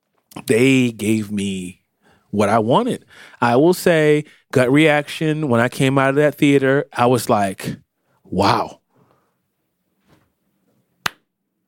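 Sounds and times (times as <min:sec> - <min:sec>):
speech: 0:00.5 - 0:08.8
slow hand claps: 0:11.0 - 0:11.3.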